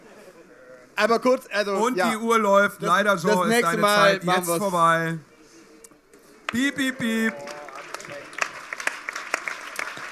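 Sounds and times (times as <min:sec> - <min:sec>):
speech: 0:01.0 - 0:05.3, 0:06.5 - 0:07.5
audience applauding: 0:06.5 - 0:10.1.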